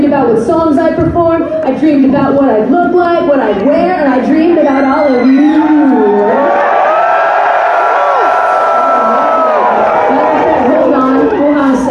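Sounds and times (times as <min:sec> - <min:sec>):
speech: 0:00.1 - 0:01.0, 0:01.8 - 0:06.6
large crowd outside a concert cheering and whooping: 0:04.6 - 0:11.9.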